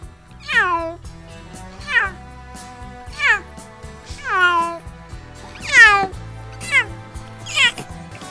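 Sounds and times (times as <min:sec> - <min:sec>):
frightened cat meowing inside a pet carrier: 0:00.4 - 0:01.0, 0:01.8 - 0:02.2, 0:03.1 - 0:03.5, 0:04.1 - 0:04.8, 0:05.6 - 0:07.9.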